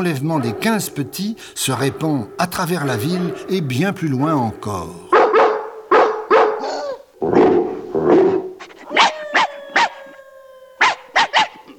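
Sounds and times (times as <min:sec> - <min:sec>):
dog howling: 0:00.0 - 0:05.1, 0:08.2 - 0:11.7
speech: 0:00.0 - 0:05.1
several dogs barking with sharp yaps and deeper woofs: 0:00.0 - 0:11.7.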